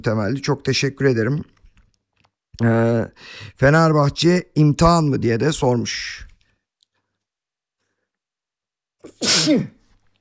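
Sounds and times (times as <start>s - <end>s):
speech: 0.0s - 1.6s, 2.6s - 6.3s, 9.1s - 9.8s
loud sneeze: 9.0s - 9.9s.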